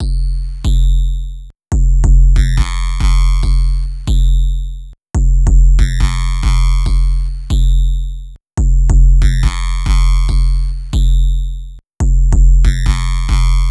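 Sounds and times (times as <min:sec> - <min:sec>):
big bass loop: 0:00.0 - 0:13.6.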